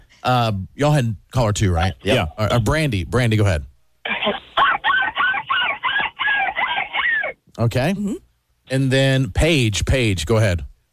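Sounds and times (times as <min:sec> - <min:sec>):
speech: 0:00.2 - 0:04.4, 0:07.6 - 0:10.7
person imitating seagull squawks in a seagull calling contest: 0:04.3 - 0:07.4.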